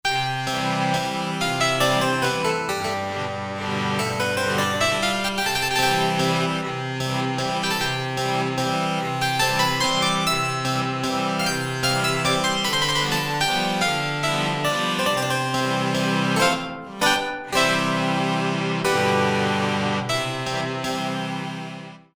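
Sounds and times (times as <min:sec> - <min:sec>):
baroque music on Korg MSC-6S fretted instruments: 0:00.0 - 0:22.1.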